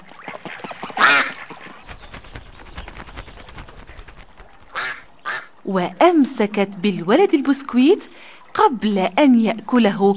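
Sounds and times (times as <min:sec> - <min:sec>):
duck giving loud raspy quacks: 0:01.0 - 0:01.4, 0:04.7 - 0:05.5
speech: 0:05.7 - 0:10.1.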